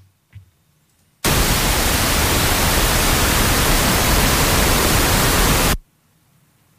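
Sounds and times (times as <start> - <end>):
recorded broadband noise signal hiss: 1.2 - 5.8.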